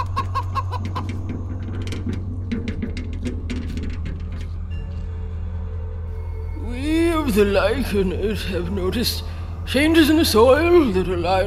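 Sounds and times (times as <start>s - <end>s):
chicken clucking: 0.0s - 1.5s
low rumbling hum: 0.0s - 11.4s
speech: 7.3s - 11.4s.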